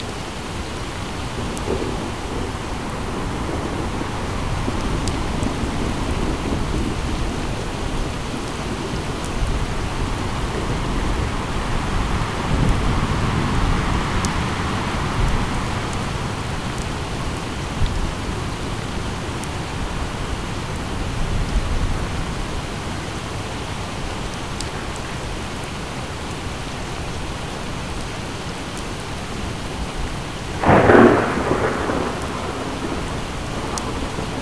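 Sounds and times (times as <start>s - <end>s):
rain outside: 0.0s - 34.4s
wind outside: 0.0s - 34.4s
thunder outside: 1.3s - 16.8s, 30.6s - 34.4s.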